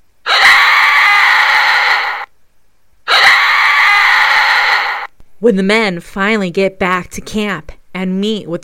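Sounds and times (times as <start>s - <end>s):
long piercing screams from the woods: 0.2s - 2.3s, 3.1s - 5.1s
speech: 5.4s - 8.6s.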